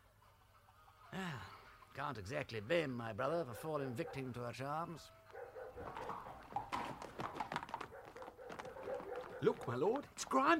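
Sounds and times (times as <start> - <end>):
speech: 1.2 - 5.2, 5.8 - 6.3, 9.4 - 10.5
horse hooves clip-clopping: 5.2 - 10.5.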